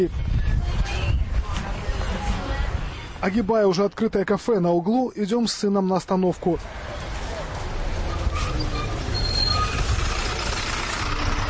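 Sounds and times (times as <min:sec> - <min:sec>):
speech: 0:00.0 - 0:00.2, 0:03.2 - 0:06.9
modern Jelcz city bus engine rumbling at a stop in Warsaw: 0:00.0 - 0:03.8, 0:06.4 - 0:11.4
street noise in Warsaw: 0:00.0 - 0:11.4
city bus brake squeals: 0:06.8 - 0:11.4.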